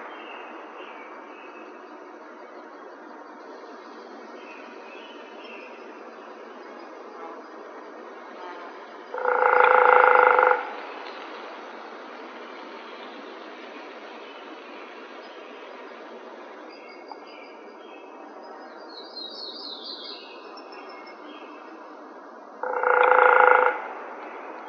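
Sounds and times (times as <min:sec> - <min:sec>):
Hairy Woodpecker drumming: 0:09.1 - 0:10.8, 0:22.6 - 0:23.9.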